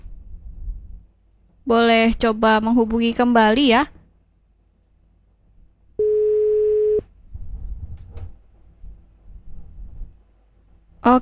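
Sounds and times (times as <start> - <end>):
speech: 1.7 - 4.0
telephone beep after a call has been cut off: 6.0 - 7.0.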